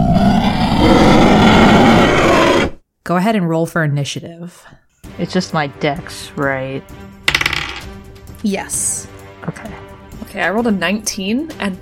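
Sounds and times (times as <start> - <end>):
monstrous howls and roars of two hulking twisted creatures charging: 0.0 - 2.8
speech: 3.1 - 7.1, 8.4 - 11.8.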